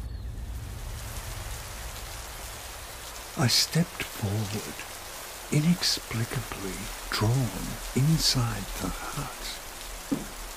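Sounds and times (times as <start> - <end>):
light drizzle: 0.0 - 10.5
sudden heavy rain pattering on a surface: 0.0 - 10.5
speech: 3.4 - 4.9, 5.5 - 10.4.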